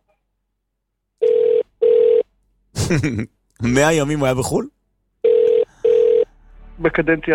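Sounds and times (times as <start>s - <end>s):
double-beat international phone ringback tone: 1.2s - 2.3s, 5.2s - 6.3s
speech: 2.9s - 4.8s, 6.8s - 7.3s.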